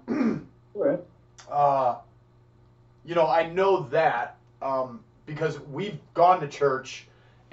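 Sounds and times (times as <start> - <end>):
person clearing throat: 0.0 - 0.5
person coughing: 0.0 - 0.5
speech: 1.5 - 2.1, 3.0 - 7.5.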